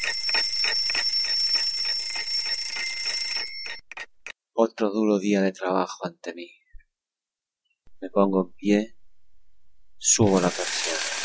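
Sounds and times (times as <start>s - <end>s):
alarm clock ringing with shrill electronic pulsing beeps: 0.0s - 3.9s
speech: 4.6s - 6.6s, 8.0s - 9.0s, 10.0s - 10.8s.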